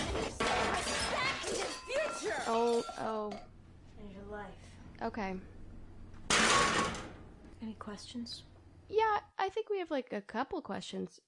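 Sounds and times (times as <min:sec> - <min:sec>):
objects being smashed: 0:00.0 - 0:03.0, 0:06.3 - 0:07.2
glass shattering and clinking: 0:00.1 - 0:03.1, 0:06.3 - 0:07.0
speech: 0:02.5 - 0:05.6, 0:07.6 - 0:11.2.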